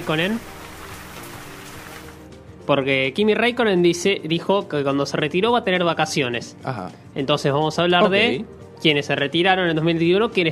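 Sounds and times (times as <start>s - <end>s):
speech: 0.0s - 0.6s, 2.7s - 10.5s
water droplets pattering like light rain: 0.0s - 2.3s.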